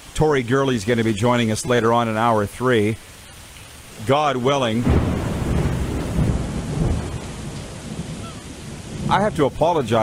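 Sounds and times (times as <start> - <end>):
steady dense rainfall during storm: 0.0 - 10.0
speech: 0.2 - 3.1, 4.0 - 5.0, 9.1 - 10.0
low heavy rumble of thunder: 3.9 - 10.0.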